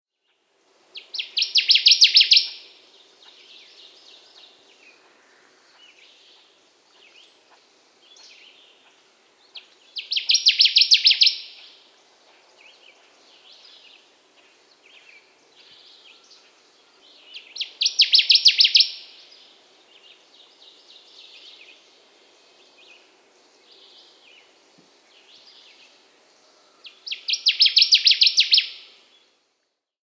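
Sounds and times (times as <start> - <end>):
Connecticut warbler singing: 1.0 - 5.0, 5.7 - 11.8, 14.8 - 25.9, 26.8 - 29.2.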